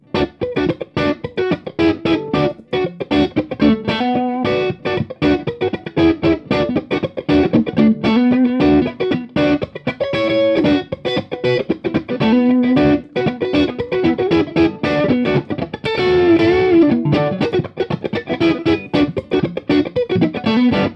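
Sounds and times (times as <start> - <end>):
vintage funk guitar: 0.0 - 20.9.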